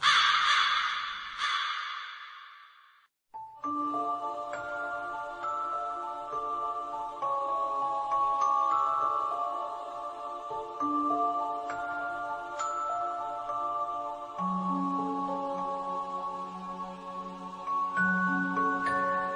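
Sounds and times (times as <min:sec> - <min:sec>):
crow cawing: 0:00.0 - 0:02.8
sustained chime-like musical tones: 0:03.4 - 0:19.3.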